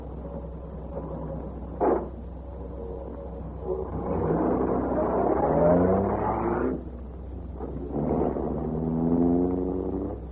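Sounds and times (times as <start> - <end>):
car engine revving hard and accelerating away: 3.6 - 10.2.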